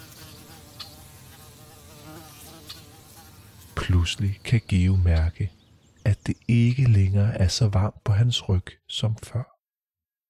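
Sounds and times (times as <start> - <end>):
flies, bees and other insects buzzing over a slightly muddy meadow on a warm sunny day: 0.0 - 5.7
speech: 3.9 - 5.6, 6.3 - 9.5.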